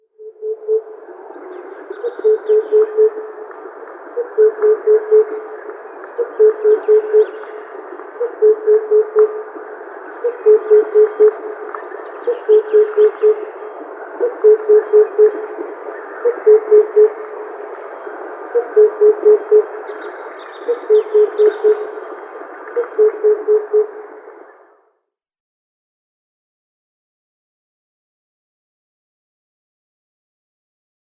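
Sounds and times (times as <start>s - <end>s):
male Oriental Cuckoo display: 0.2s - 1.0s, 2.0s - 3.3s, 4.2s - 5.5s, 6.2s - 7.4s, 8.2s - 9.5s, 10.2s - 11.6s, 12.2s - 13.6s, 14.2s - 17.2s, 18.5s - 22.0s, 22.8s - 24.0s.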